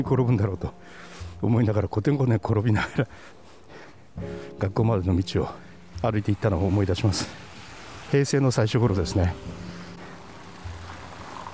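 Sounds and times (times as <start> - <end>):
speech: 0.0 - 3.4, 4.2 - 7.5, 8.1 - 9.7
traffic on a busy road with engine rumble and road hiss: 5.7 - 11.5.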